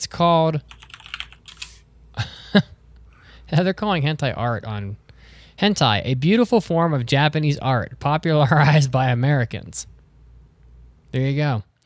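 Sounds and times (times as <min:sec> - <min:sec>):
speech: 0:00.0 - 0:00.8, 0:02.5 - 0:02.7, 0:03.5 - 0:05.0, 0:05.6 - 0:09.9, 0:11.1 - 0:11.7
typing a search term on a computer keyboard: 0:00.7 - 0:01.8.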